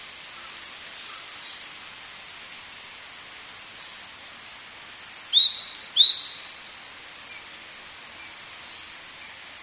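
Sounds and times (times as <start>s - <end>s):
faint background hiss: 0.0s - 9.6s
Japanese tit rough note and sliding clear whistle: 5.0s - 6.6s.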